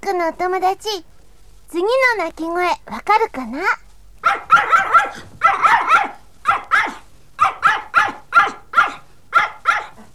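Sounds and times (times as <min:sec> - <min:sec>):
speech: 0:00.0 - 0:01.1, 0:01.7 - 0:05.3
dog barking: 0:04.2 - 0:10.1.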